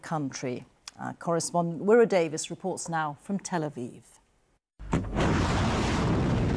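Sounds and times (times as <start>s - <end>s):
speech: 0.1s - 4.2s
missile strike explosion at a petrochemical facility in Mashhad: 4.8s - 6.5s
loud sustained roaring rumble after a missile strike explosion: 4.9s - 6.5s.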